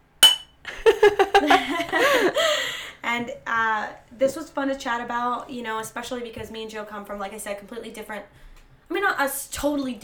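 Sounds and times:
glasses clinking in a toast at home: 0.2s - 0.6s
people laughing: 0.7s - 2.6s
speech: 3.1s - 10.0s.

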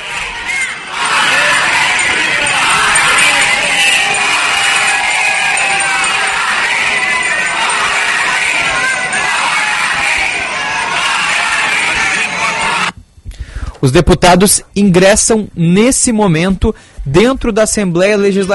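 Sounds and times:
large protest crowd shouting chants outside the Legislative Assembly: 0.0s - 13.0s
speech: 13.8s - 18.5s.

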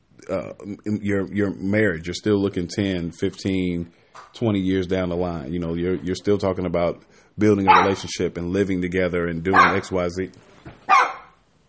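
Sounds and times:
speech: 0.3s - 10.5s
dog barking at someone at the door: 7.6s - 8.1s, 9.5s - 10.0s, 10.9s - 11.4s.

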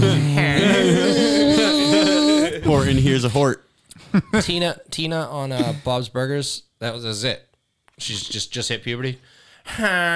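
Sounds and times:
person imitating a buzzing insect with a nasal drone: 0.0s - 3.0s
speech: 2.8s - 10.1s.

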